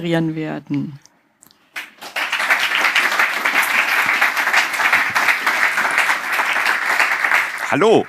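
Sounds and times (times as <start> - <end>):
speech: 0.0 - 1.0, 7.7 - 8.0
crowd applauding: 1.7 - 8.0.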